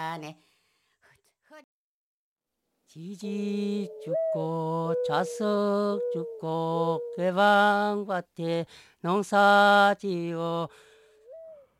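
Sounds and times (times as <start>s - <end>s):
speech: 0.2s - 0.5s, 2.9s - 10.9s
person imitating a mountain dove's mournful coo in a song: 3.8s - 7.4s.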